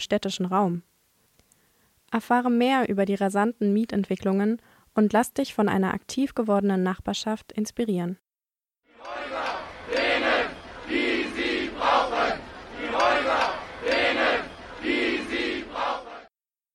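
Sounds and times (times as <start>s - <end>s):
speech: 0.0s - 0.9s, 2.1s - 8.2s
protest crowd chanting on city streets: 8.9s - 16.3s.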